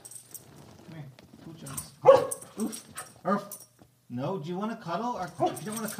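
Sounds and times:
dog sharp bark: 2.0s - 3.5s, 5.4s - 5.8s.

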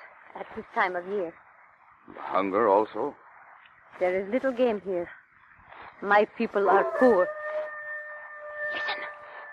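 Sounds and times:
speech: 0.4s - 1.4s, 2.1s - 3.2s, 3.9s - 5.2s, 6.0s - 7.4s
wolf howling: 6.6s - 9.5s.

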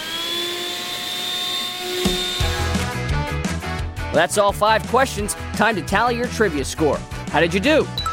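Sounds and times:
vacuum cleaner running: 0.0s - 2.9s
speech: 4.2s - 8.0s.

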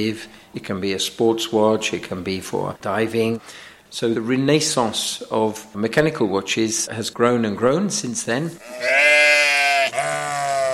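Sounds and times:
speech: 0.0s - 9.4s
sheep bleating on the green roof of a modern workshop: 8.6s - 10.7s.

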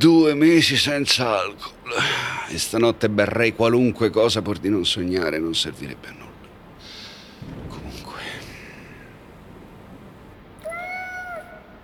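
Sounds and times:
speech: 0.0s - 6.3s
hungry cat meowing: 10.6s - 11.8s.

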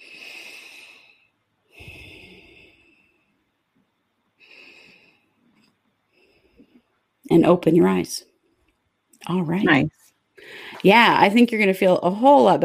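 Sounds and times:
deep breathing during a guided relaxation exercise: 0.0s - 3.6s, 4.4s - 7.1s, 10.4s - 10.8s
speech: 7.4s - 8.3s, 9.3s - 12.6s.

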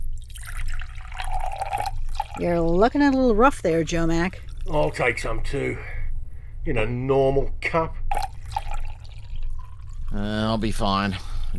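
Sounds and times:
coffee pouring into a cup: 0.0s - 4.9s, 8.1s - 11.5s
speech: 2.4s - 5.9s, 6.6s - 8.0s, 10.1s - 11.5s.

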